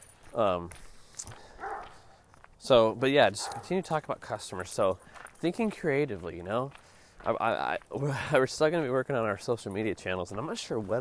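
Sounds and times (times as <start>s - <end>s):
speech: 0.3s - 1.4s, 2.6s - 10.9s
dog yipping: 1.6s - 2.0s
dog barking: 1.6s - 2.2s, 3.4s - 3.8s.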